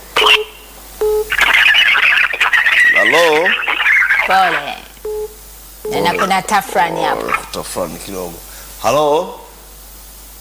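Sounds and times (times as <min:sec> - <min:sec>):
crackly hissing telephone line noise: 0:00.0 - 0:10.4
electronic telephone beeps as a call is picked up: 0:01.0 - 0:01.4, 0:05.0 - 0:06.3
speech: 0:04.3 - 0:04.8, 0:05.9 - 0:09.4.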